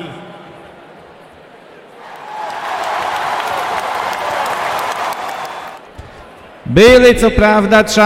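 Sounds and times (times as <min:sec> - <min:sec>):
group applauding: 0:02.0 - 0:06.5
speech: 0:06.7 - 0:08.0.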